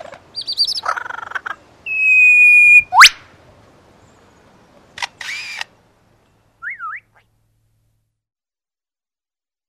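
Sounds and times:
superb lyrebird song of whistles, buzzy trills and sweeps: 0.3 - 3.2, 3.8 - 7.4.

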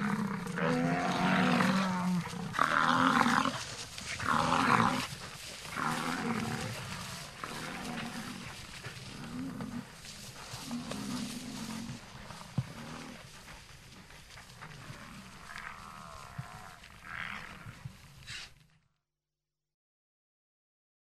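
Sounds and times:
American bison bellowing: 0.0 - 13.3, 14.6 - 17.8.

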